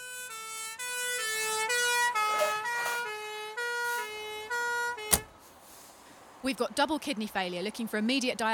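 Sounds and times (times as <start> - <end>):
ambulance siren alternating high and low tones arriving at a hospital A&E: 0.0 - 5.3
sharp thud: 5.1 - 5.3
speech: 6.4 - 8.5.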